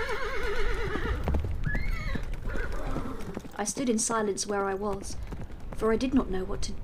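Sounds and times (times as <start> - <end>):
horse pulling a trap neighing: 0.0 - 3.4
horse hooves clopping on a hard surface: 0.0 - 6.8
speech: 3.6 - 6.8.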